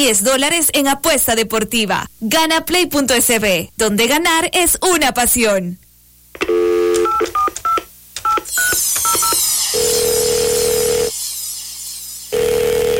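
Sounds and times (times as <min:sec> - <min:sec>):
speech: 0:00.0 - 0:05.8, 0:06.4 - 0:06.6
telephone line hiss: 0:06.4 - 0:11.2, 0:12.3 - 0:12.9
telephone touch-tone keypad beeps: 0:07.0 - 0:09.4.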